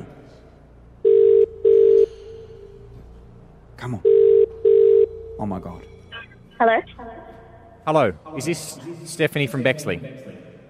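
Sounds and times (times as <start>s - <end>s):
faint low hum: 0.0s - 10.6s
electronic ringback tones of an outgoing telephone call: 1.0s - 2.1s, 4.0s - 5.3s
speech: 3.8s - 4.4s, 5.4s - 6.0s, 6.6s - 10.5s.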